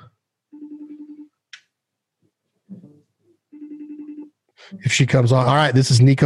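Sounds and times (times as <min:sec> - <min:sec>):
phone ringback tone on an outgoing call: 0:00.5 - 0:01.3, 0:03.5 - 0:04.3
speech: 0:04.7 - 0:06.2.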